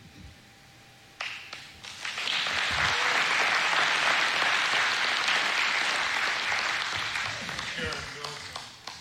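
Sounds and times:
audience applause for a speaker: 1.8s - 8.9s.

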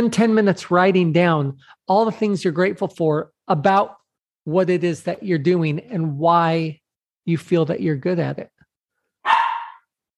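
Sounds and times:
speech: 0.0s - 8.5s
female dog barking: 9.2s - 9.9s.

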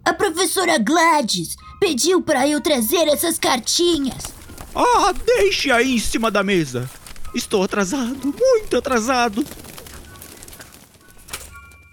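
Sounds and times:
speech: 0.2s - 9.6s
busy rustling background: 3.4s - 11.9s
pigeon cooing: 4.2s - 11.3s.

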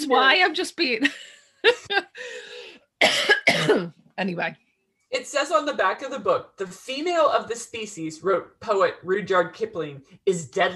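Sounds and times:
speech: 0.1s - 10.7s
laughter: 1.0s - 2.5s
harsh raspy coughs: 3.0s - 3.9s.

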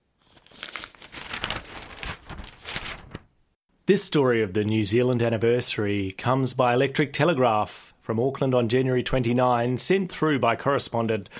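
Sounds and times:
newspaper page turning with crisp paper rustling and crinkling: 0.2s - 3.4s
speech: 3.9s - 11.3s.

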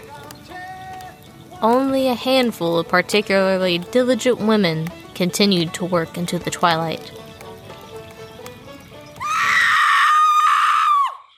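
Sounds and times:
speech: 1.6s - 7.2s
woman's sudden piercing shriek: 9.2s - 11.3s.

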